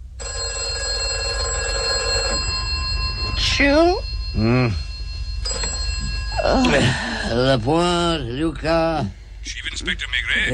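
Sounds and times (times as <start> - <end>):
telephone bell ringing: 0.0 - 8.2
speech: 3.6 - 4.8, 6.6 - 10.5.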